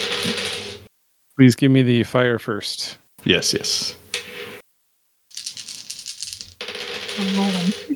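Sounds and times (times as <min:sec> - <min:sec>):
speech: 0:01.4 - 0:04.0, 0:07.2 - 0:07.9
handful of six-sided dice rolled across a hard surface: 0:05.3 - 0:07.9.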